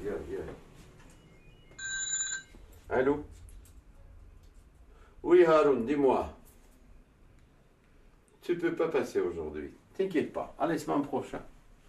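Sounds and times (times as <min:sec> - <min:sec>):
telephone ringing with a bright electronic trill: 0:01.2 - 0:02.6
speech: 0:02.9 - 0:03.4, 0:05.2 - 0:06.4, 0:08.5 - 0:11.5.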